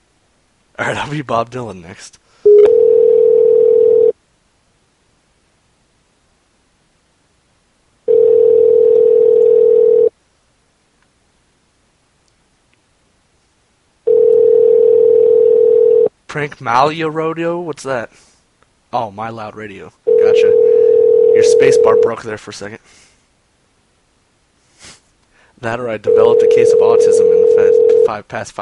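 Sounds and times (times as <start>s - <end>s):
speech: 0.8s - 2.3s, 16.4s - 18.3s, 18.9s - 20.8s, 21.4s - 23.0s, 25.6s - 28.5s
telephone tone after the caller hung up: 2.4s - 4.2s, 8.1s - 10.1s, 14.0s - 16.1s, 20.1s - 22.2s, 26.0s - 28.1s.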